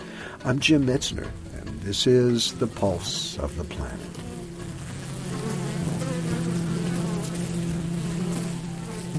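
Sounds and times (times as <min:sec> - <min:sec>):
bees buzzing: 0:00.0 - 0:09.1
speech: 0:00.4 - 0:04.4.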